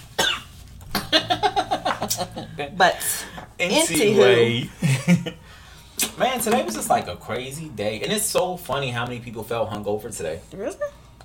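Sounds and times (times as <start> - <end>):
harsh chesty coughing: 0.2 - 2.6
laughter: 1.0 - 5.5
speech: 2.2 - 5.4, 6.2 - 11.0.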